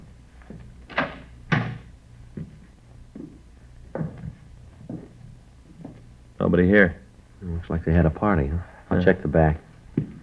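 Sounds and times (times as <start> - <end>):
apartment door clunks as it is tried and opened: 0.9 - 1.9
speech: 6.5 - 10.1.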